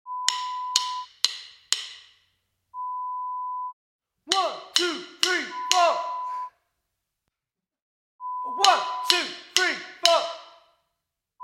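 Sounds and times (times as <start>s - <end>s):
drumsticks clicking a count-in: 0.2s - 2.3s, 4.3s - 6.5s, 8.5s - 10.7s.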